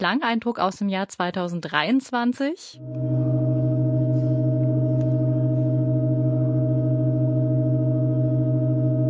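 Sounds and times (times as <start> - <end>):
speech: 0.0 - 3.4
church organ holding a sustained chord with keys weighted down: 2.8 - 9.0.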